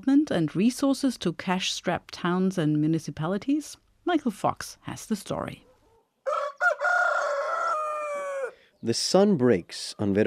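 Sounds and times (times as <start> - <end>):
speech: 0.0 - 5.7, 8.8 - 10.2
rooster crowing at sunrise on a hillside farm in southern Brazil: 6.2 - 8.6.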